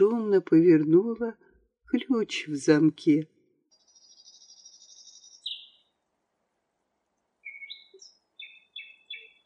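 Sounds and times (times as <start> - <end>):
speech: 0.0 - 3.3
nightingale singing at night in a garden: 3.7 - 6.0, 7.4 - 9.4.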